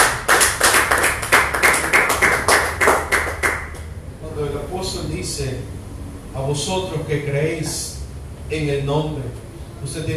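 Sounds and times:
audience clapping in unison: 0.0 - 3.9
speech: 6.5 - 7.9, 8.5 - 10.1.

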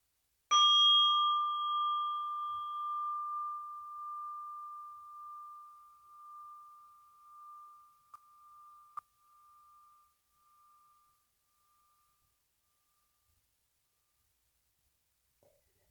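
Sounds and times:
meditation bell struck to end a meditation practice: 0.5 - 13.2.

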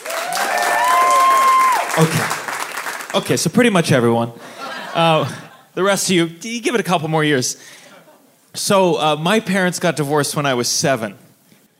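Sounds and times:
audience whoops and cheers: 0.0 - 2.1
audience applause: 0.0 - 3.3
speech: 2.0 - 2.4, 3.1 - 7.8, 8.5 - 11.2.

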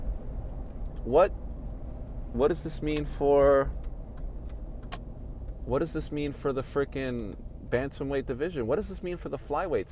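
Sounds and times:
car traffic rumbling on the road: 0.0 - 9.8
speech: 1.0 - 1.4, 2.3 - 3.9, 5.7 - 9.8.

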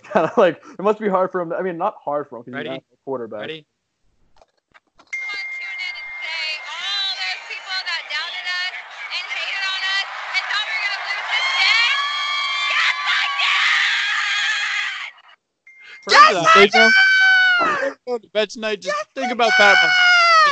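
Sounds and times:
laughter: 0.0 - 2.8, 6.2 - 14.2, 15.9 - 20.5
speech: 0.1 - 3.7, 16.3 - 20.0
woman screaming and cheering at high pitch: 5.3 - 15.2, 16.0 - 18.0, 18.8 - 20.5
busy crowd roaring and whooping: 6.2 - 15.2, 16.0 - 18.0, 18.8 - 20.5.

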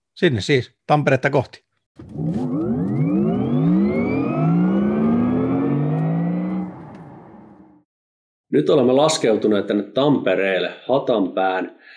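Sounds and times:
speech: 0.2 - 2.4, 8.5 - 11.9
car on a test drive revving and pulling away through gear changes: 2.0 - 7.8.

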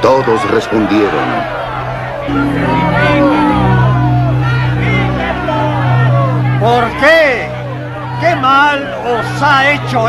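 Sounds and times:
speech: 0.0 - 1.6, 2.3 - 3.6, 6.6 - 7.6, 8.2 - 10.0
large crowd shouting angrily: 0.0 - 10.0
low sustained drone: 2.3 - 10.0.

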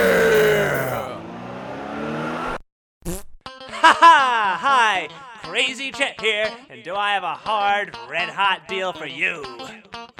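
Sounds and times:
short burst of sound: 0.0 - 1.2
loud throaty car engine revving and pulling away: 0.0 - 2.6
speech: 3.8 - 9.7.

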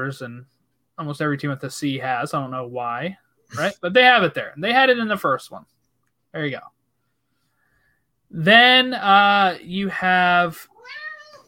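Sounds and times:
speech: 0.0 - 6.8, 8.3 - 11.0
cat meowing: 10.7 - 11.4.

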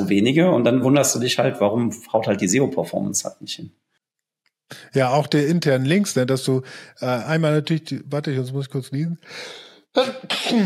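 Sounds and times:
speech: 0.1 - 3.8, 4.7 - 10.6
sneeze: 10.0 - 10.6.

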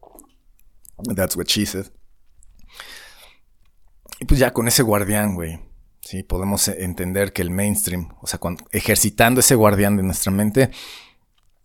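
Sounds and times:
airy slurp of water: 0.0 - 1.1
speech: 1.0 - 2.0, 4.2 - 11.1.

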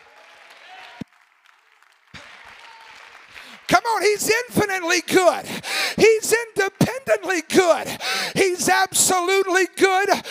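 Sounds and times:
audience clapping: 0.0 - 5.4
speech: 3.9 - 10.3.

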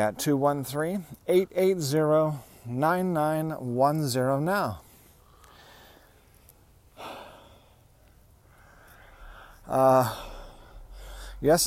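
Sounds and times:
speech: 0.0 - 4.8, 9.7 - 10.3, 11.4 - 11.6
heavy breathing of a person walking uphill with a dog in Debs Park Los Angeles: 4.8 - 6.3, 6.9 - 11.6
partly voiced gasping breath: 7.0 - 11.4.

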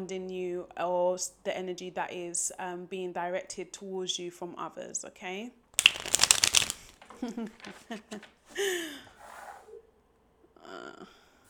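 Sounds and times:
speech: 0.0 - 5.6, 7.2 - 9.1, 10.7 - 11.2
deck of cards being riffle shuffled: 5.8 - 8.3.

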